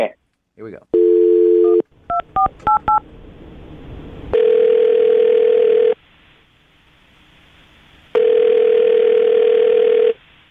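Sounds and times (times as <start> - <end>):
telephone dial tone: 1.0 - 1.8, 4.3 - 6.0, 8.2 - 10.2.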